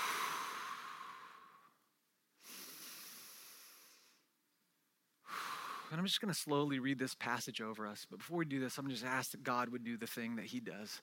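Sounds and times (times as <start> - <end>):
slow deep breaths in through the nose and out through the mouth: 0.0 - 4.3, 5.2 - 6.0
speech: 5.9 - 11.0.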